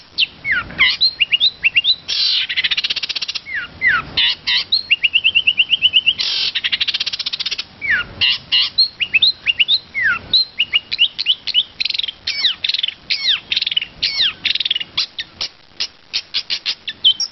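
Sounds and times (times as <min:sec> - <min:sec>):
long-tailed shrike song with imitations of other birds: 0:00.0 - 0:17.3.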